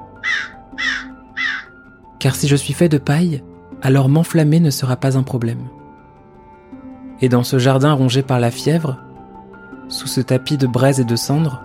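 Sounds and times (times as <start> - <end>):
crow cawing: 0.2 - 1.9
speech: 2.2 - 5.8, 7.2 - 9.1, 9.9 - 11.6.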